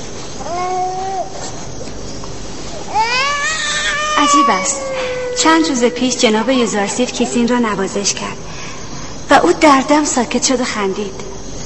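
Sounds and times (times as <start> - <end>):
steady hiss: 0.0 - 11.6
baby crying in drawn-out wails: 2.9 - 7.6
speech: 4.3 - 8.6, 9.3 - 11.3.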